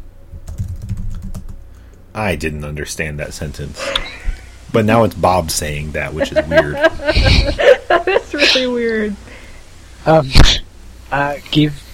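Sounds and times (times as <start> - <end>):
typing on a computer keyboard: 0.4 - 1.6
speech: 2.2 - 9.2, 10.0 - 11.8
laughter: 3.8 - 4.4, 5.7 - 9.0.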